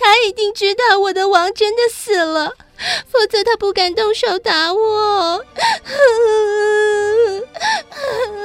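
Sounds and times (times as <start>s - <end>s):
speech: 0.3s - 8.4s
person wailing and sobbing: 5.6s - 8.4s.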